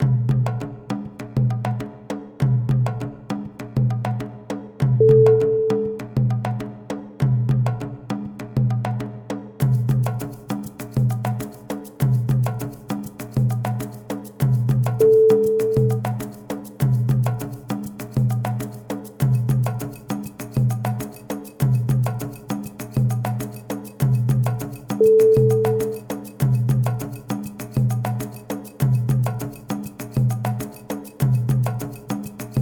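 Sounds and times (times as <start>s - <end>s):
African drums: 0.0s - 32.6s.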